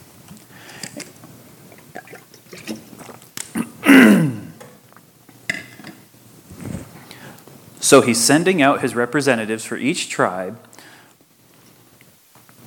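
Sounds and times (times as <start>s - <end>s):
person drinking water with slurps and swallows: 0.7s - 5.1s
speech: 7.9s - 10.7s.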